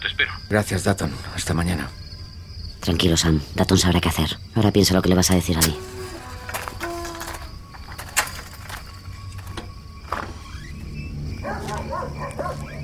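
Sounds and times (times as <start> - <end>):
speech: 0.2 - 2.0, 2.8 - 6.0
dog barking: 11.4 - 12.8.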